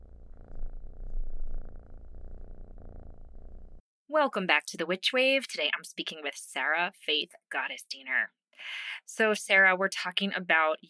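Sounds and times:
cat purring: 0:00.0 - 0:03.8
speech: 0:04.1 - 0:10.8.

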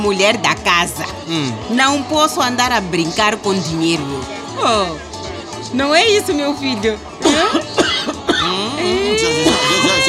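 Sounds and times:
speech: 0:00.0 - 0:05.1, 0:05.7 - 0:07.6, 0:08.4 - 0:10.0
man coughing: 0:07.2 - 0:08.6, 0:09.2 - 0:10.0
man making strained throaty voiced sounds: 0:08.4 - 0:10.0.

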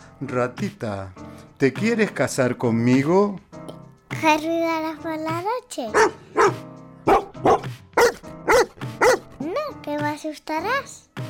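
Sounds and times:
speech: 0:00.2 - 0:03.5, 0:04.2 - 0:07.2, 0:09.9 - 0:11.0
dog barking: 0:05.9 - 0:09.3.

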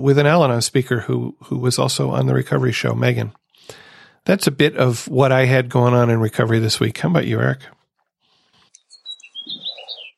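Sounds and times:
speech: 0:00.0 - 0:07.8
birds chirping and tweeting outdoors: 0:08.3 - 0:10.1.

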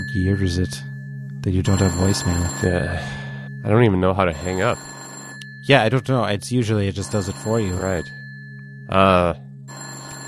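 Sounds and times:
speech: 0:00.1 - 0:05.0, 0:05.6 - 0:08.2, 0:08.9 - 0:09.4
telephone ringing during a call: 0:01.6 - 0:05.8, 0:07.0 - 0:08.6, 0:09.7 - 0:10.2.

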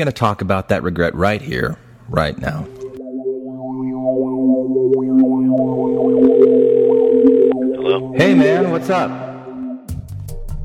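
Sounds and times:
speech: 0:00.0 - 0:02.8, 0:08.2 - 0:09.2
wavering slightly distorted electronic warbles: 0:03.1 - 0:09.9
second telephone tone: 0:04.2 - 0:09.7
telephone dial tone of a phone call: 0:05.6 - 0:08.0.

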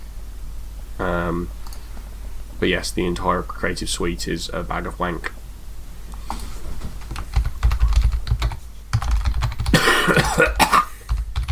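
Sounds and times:
speech: 0:01.0 - 0:01.6, 0:02.6 - 0:05.4
computer keyboard typing: 0:07.0 - 0:09.8, 0:11.1 - 0:11.5
person coughing: 0:09.7 - 0:11.1.

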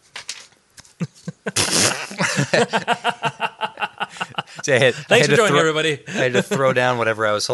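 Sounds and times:
laughter: 0:01.0 - 0:07.0
hand-made fart noises: 0:01.5 - 0:02.2
speech: 0:02.5 - 0:03.3, 0:04.7 - 0:07.5.

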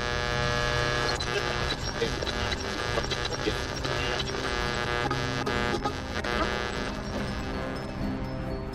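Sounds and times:
car radio interference hum with crackly buzzing while tuning: 0:00.0 - 0:07.8.

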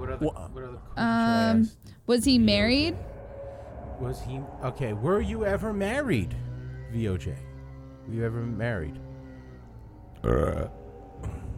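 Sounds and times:
speech: 0:00.2 - 0:03.1, 0:04.0 - 0:07.5, 0:08.1 - 0:09.0, 0:10.2 - 0:11.4
loud low throaty burp: 0:10.1 - 0:11.5.

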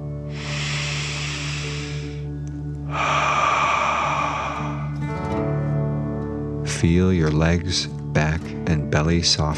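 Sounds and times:
soft steady musical drone: 0:00.0 - 0:07.7
deep breaths in through the nose and out: 0:00.2 - 0:05.7
speech: 0:06.8 - 0:09.5.

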